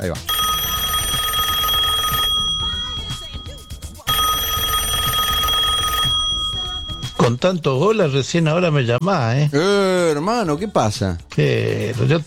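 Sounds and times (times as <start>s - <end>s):
speech: 0.0s - 0.4s, 7.3s - 12.2s
telephone ringing during an outgoing call: 0.0s - 7.4s.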